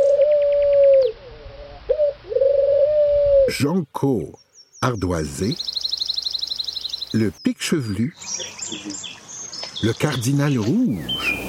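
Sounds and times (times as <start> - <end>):
mourning dove cooing: 0.0 - 3.6
speech: 3.5 - 5.9, 7.1 - 9.2, 9.8 - 11.4.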